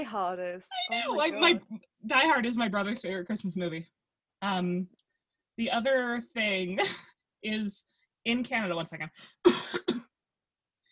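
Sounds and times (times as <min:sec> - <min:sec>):
speech: 0:00.0 - 0:05.0, 0:05.6 - 0:09.8
person coughing or clearing throat: 0:09.4 - 0:10.1.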